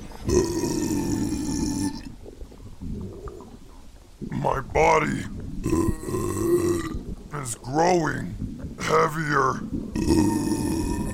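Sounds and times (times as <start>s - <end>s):
long loud deep burp: 0.2s - 2.1s, 5.6s - 7.0s, 9.9s - 11.1s
speech: 4.8s - 5.8s, 7.4s - 10.5s.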